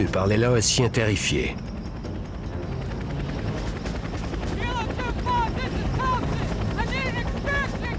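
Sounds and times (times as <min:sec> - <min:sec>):
speech: 0:00.0 - 0:01.7
evacuation helicopter rotor chopping at a landing zone: 0:00.0 - 0:07.9.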